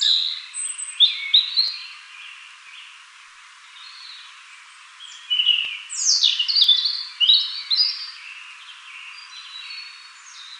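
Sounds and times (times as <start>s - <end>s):
European robin Erithacus rubecula singing whistles and trills: 0.0s - 2.9s, 5.0s - 10.5s
faint background hiss: 0.0s - 10.5s.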